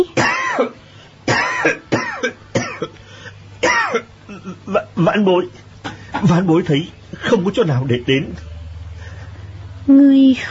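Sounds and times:
speech: 0.0 - 2.0, 3.9 - 5.6, 6.2 - 8.5, 9.8 - 10.4
man coughing harshly, performed by a narrating voice: 0.2 - 3.0, 3.6 - 5.0.

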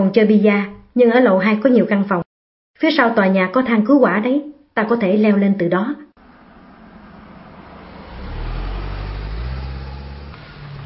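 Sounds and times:
speech: 0.0 - 2.2, 2.8 - 6.1
car engine rumbling as the car slows and pulls up to the curb: 6.2 - 10.8.

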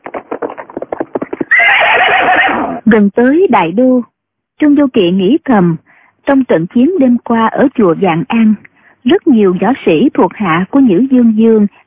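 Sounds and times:
horse running hoofbeats: 0.0 - 2.8
horse neighing: 1.3 - 2.8
speech: 2.9 - 11.8.

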